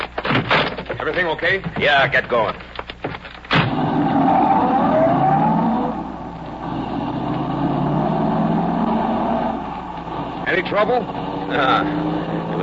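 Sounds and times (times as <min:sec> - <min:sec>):
speech: 0:01.0 - 0:02.7, 0:10.5 - 0:12.6
car engine revving and pulling away: 0:03.6 - 0:12.6.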